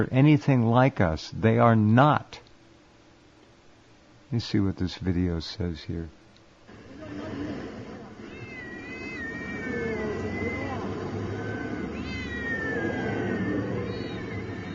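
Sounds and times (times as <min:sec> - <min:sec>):
speech: 0:00.0 - 0:02.4, 0:04.3 - 0:06.2
cats meowing inside plastic bags on a sidewalk: 0:08.2 - 0:14.7.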